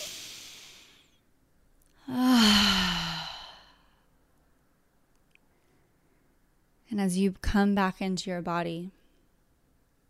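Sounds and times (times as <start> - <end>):
deep breaths inhaling through the nose and exhaling: 0.0 - 1.2, 2.0 - 4.1
speech: 7.0 - 9.0.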